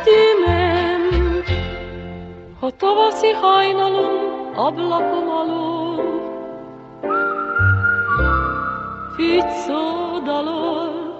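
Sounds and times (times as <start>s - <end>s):
musical accompaniment with low bass notes: 0.0s - 11.1s
speech: 2.7s - 5.8s, 9.2s - 10.9s
person whistling in imitation of a blackbird: 7.1s - 9.5s.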